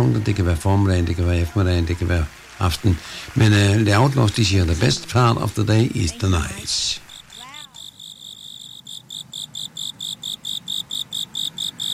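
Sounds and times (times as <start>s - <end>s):
speech: 0.2s - 7.0s
soft hiss: 0.4s - 11.4s
grasshoppers chirping at night under a full moon: 6.2s - 11.9s.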